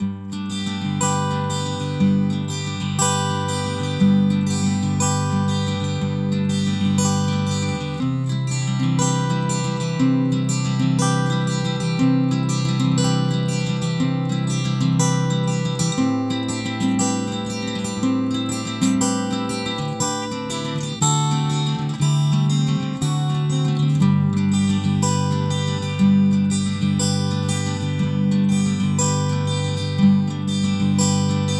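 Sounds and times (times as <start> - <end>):
piezo guitar DI with IR: 0.0 - 31.5.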